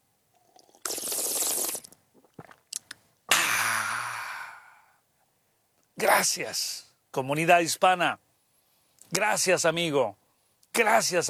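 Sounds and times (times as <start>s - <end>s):
slurping sip of hot coffee: 0.4s - 3.0s
swallowing clicks: 0.5s - 3.0s
satisfied breathy sigh: 3.3s - 5.0s
speech: 6.0s - 8.2s, 9.1s - 10.2s, 10.8s - 11.2s.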